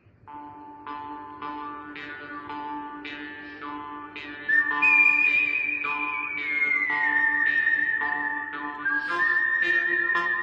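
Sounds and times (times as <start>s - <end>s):
whistled melody from a western film score: 3.7s - 10.4s.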